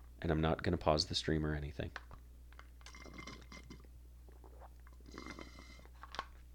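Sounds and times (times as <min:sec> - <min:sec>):
speech: 0:00.2 - 0:02.1
soft wet mouth sounds: 0:02.9 - 0:05.8
sips and swallows of water: 0:02.9 - 0:05.9.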